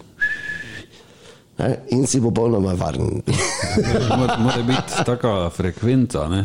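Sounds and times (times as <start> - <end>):
sharp steady whistle blast: 0.2 - 0.9
speech: 1.6 - 6.4
laughter: 3.3 - 5.5.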